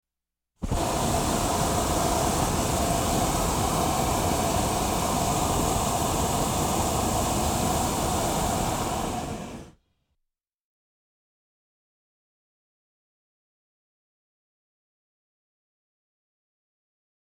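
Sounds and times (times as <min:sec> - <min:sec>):
sport hot air balloon long burner blast: 0:00.6 - 0:09.8.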